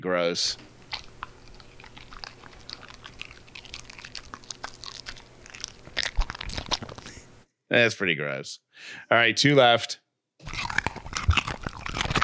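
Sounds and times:
speech: 0.0 - 1.0, 7.7 - 10.6
carrot being chewed: 0.6 - 7.3, 10.4 - 12.2.

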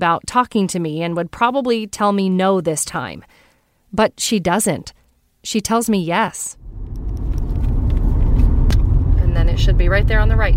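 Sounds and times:
speech: 0.0 - 7.0, 9.5 - 10.5
car engine and road rumble driving toward a home: 6.6 - 10.5.

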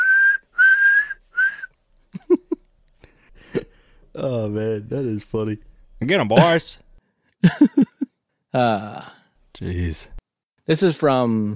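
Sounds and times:
police officer's penny whistle blasts calling other officers: 0.0 - 1.7
laughter: 2.1 - 3.7, 7.4 - 8.1
speech: 4.2 - 11.5.

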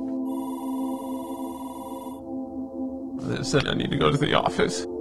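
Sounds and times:
classroom telephone ringing with a buzzing bell tone: 0.2 - 2.2
speech: 3.3 - 4.9.

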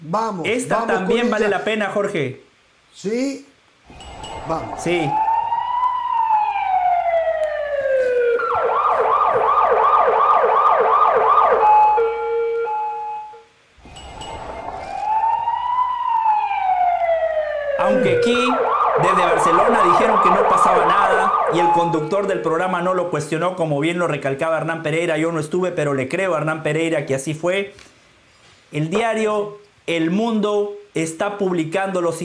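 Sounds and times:
speech: 0.0 - 5.2, 21.5 - 27.9, 28.7 - 32.2
emergency siren wailing and yelping: 3.9 - 22.9.

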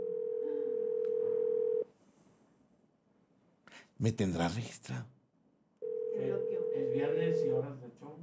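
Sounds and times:
telephone ringing tone on an unanswered call: 0.0 - 1.8, 5.8 - 7.6
speech: 4.0 - 5.2, 6.2 - 8.2.

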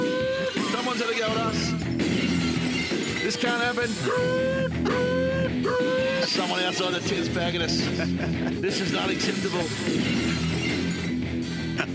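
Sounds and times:
glass shattering sound effect: 0.5 - 4.0, 8.9 - 11.2
speech: 3.2 - 10.5
laughter: 7.5 - 9.1, 11.7 - 11.9.

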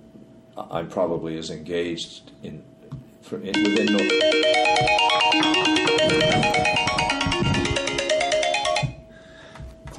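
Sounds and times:
speech: 0.6 - 6.6
mobile phone ringtone with bright electronic melody: 3.5 - 9.0.

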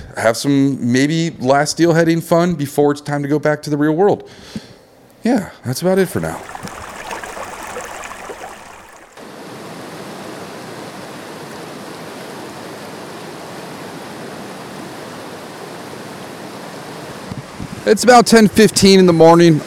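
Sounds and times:
speech: 0.2 - 6.8, 17.9 - 19.6
rushing river water: 6.2 - 10.3.

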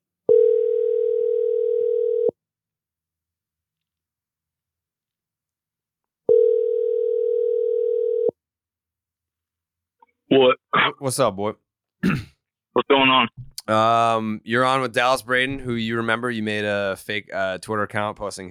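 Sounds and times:
phone line ringing on an outgoing call: 0.3 - 2.3, 6.3 - 8.3
speech: 10.3 - 18.4.

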